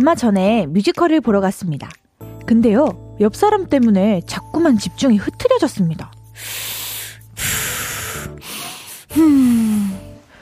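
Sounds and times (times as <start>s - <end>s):
speech: 0.0s - 6.8s, 7.4s - 7.7s, 9.1s - 10.0s
drawn-out voiced sigh dropping in pitch: 6.4s - 10.4s
loud heavy breathing through a mask: 6.4s - 10.4s.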